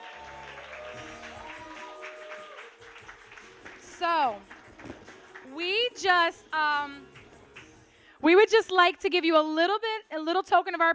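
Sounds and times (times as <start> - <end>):
audience applauding: 0.0 - 5.5
speech: 4.0 - 4.5, 5.6 - 7.1, 8.2 - 10.9.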